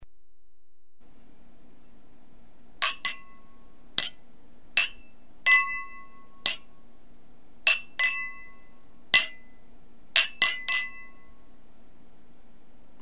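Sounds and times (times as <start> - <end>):
glasses clinking: 2.8 - 4.2, 4.8 - 6.7, 7.7 - 9.6, 10.2 - 11.3.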